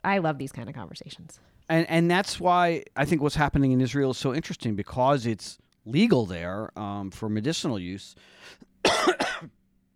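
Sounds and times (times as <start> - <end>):
speech: 0.0 - 9.6
man coughing harshly: 8.8 - 9.6.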